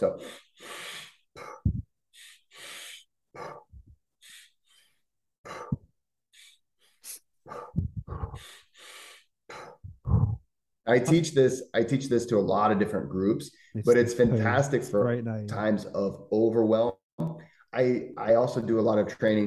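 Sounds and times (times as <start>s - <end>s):
speech: 0.0s - 0.8s, 10.9s - 19.4s
deep deliberate breathing exercise with inhales and relaxed exhales: 0.0s - 10.4s.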